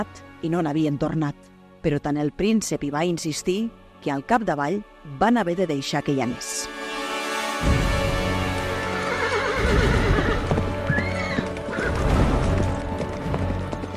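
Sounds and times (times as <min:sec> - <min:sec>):
speech: 0:00.0 - 0:06.8
horse hooves clip-clopping while trotting: 0:07.6 - 0:13.9
horse whinnying: 0:08.8 - 0:12.5.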